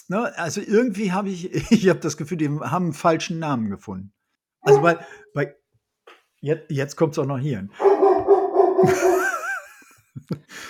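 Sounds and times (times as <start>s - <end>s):
speech: 0.0s - 5.6s, 6.4s - 7.9s, 8.8s - 9.2s, 10.2s - 10.6s
female dog yelp: 4.6s - 5.1s, 7.8s - 9.2s
female dog giving a wavering whine-like howl: 4.6s - 5.2s, 7.8s - 9.0s
laughter: 8.8s - 10.5s.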